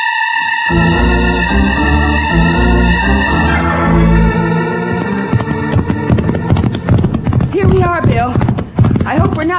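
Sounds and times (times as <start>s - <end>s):
sustained tonal musical passage: 0.0s - 7.3s
horses galloping with clip-clopping hoofbeats: 4.4s - 9.5s
riders urging horses to go faster: 5.3s - 9.5s.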